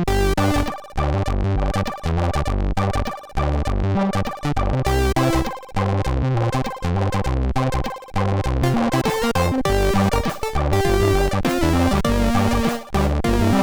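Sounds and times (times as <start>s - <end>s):
MOS6581R3 SID sound chip music: 0.1s - 13.6s.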